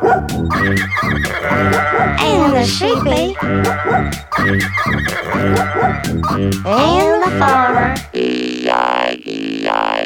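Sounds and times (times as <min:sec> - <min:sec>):
synthetic toy-like dog barking: 0:00.0 - 0:08.0
speech: 0:00.2 - 0:10.0.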